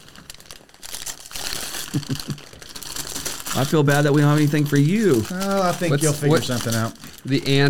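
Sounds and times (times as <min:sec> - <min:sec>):
wrapping paper being torn open as a gift is unwrapped: 0:00.0 - 0:07.6
person murmuring: 0:01.9 - 0:02.4, 0:05.5 - 0:06.6
speech: 0:02.0 - 0:02.5, 0:03.6 - 0:07.6.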